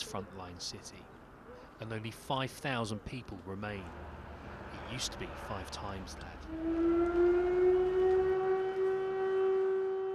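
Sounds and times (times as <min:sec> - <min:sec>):
speech: 0:00.1 - 0:01.2, 0:01.8 - 0:04.2, 0:04.9 - 0:07.2
air raid siren wailing in the frontline city of Kupiansk: 0:06.3 - 0:10.1.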